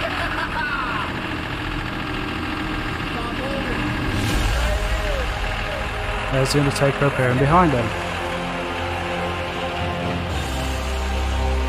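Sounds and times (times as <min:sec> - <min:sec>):
laughter: 0:00.0 - 0:01.4
tractor engine starting and idling: 0:00.0 - 0:11.6
voices: 0:03.1 - 0:08.0
speech: 0:06.4 - 0:08.0.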